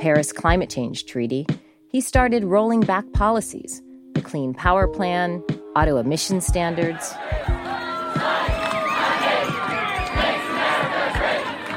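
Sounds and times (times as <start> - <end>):
speech: 0.0 - 8.3
large crowd chanting and cheering at a protest march: 6.7 - 11.7
rhythmic shouts: 6.7 - 11.7
scattered whistles: 8.1 - 10.5.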